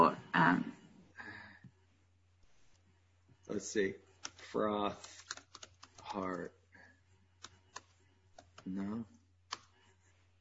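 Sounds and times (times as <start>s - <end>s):
speech: 3.5s - 5.2s, 6.1s - 6.6s, 8.6s - 9.2s
taps on a computer keyboard: 4.2s - 6.5s, 7.4s - 8.8s, 9.5s - 9.7s.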